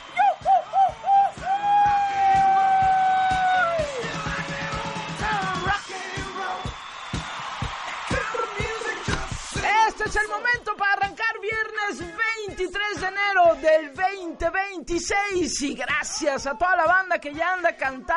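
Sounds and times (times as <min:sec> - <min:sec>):
crowd yelling and whooping in celebration: 0:00.0 - 0:11.1
rapid rhythmic thumps: 0:00.0 - 0:17.8
speech: 0:13.6 - 0:18.1.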